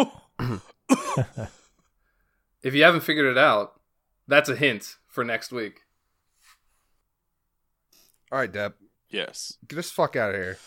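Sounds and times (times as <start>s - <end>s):
harsh throaty coughs: 0.0s - 1.6s
speech: 0.0s - 1.6s, 2.6s - 5.8s, 8.3s - 10.6s.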